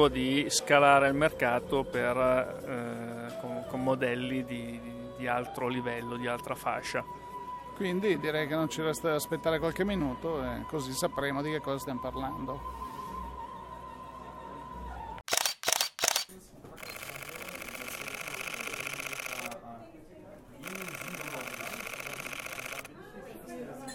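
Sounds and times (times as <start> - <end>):
speech: 0.0 - 7.2, 7.8 - 12.8
mirrorless camera burst shooting shutter: 15.3 - 19.6, 20.6 - 22.9
mirrorless camera shutter clicks: 15.3 - 19.6
faint voices murmuring: 16.1 - 23.9.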